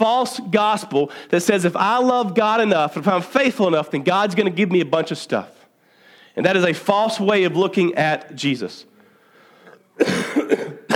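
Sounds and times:
speech: 0.0 - 5.6, 6.4 - 8.9, 10.0 - 10.9
quiet breath: 1.1 - 1.3, 5.8 - 6.4, 8.9 - 9.9
harsh cough: 9.7 - 10.9.

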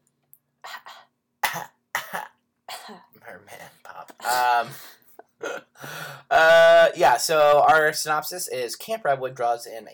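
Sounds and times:
person coughing: 1.4 - 3.2, 4.2 - 4.8, 5.4 - 5.8
speech: 7.2 - 9.9.

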